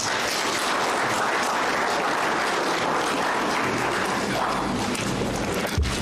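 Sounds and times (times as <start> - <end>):
audience applause: 0.0 - 5.9.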